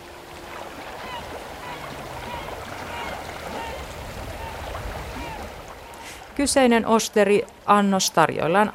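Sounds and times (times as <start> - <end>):
seaside waves and surf through headphones: 0.0 - 8.7
murmuring: 1.0 - 6.4
speech: 6.4 - 8.7.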